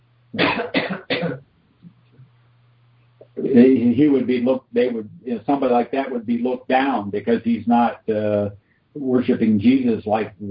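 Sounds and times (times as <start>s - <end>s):
faint hum: 0.0s - 10.5s
speech: 0.3s - 1.0s, 3.5s - 10.5s
harsh coughs: 0.4s - 1.4s.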